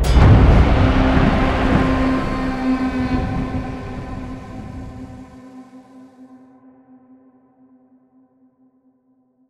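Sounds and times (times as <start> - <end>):
freespin intro: 0.0 - 5.4.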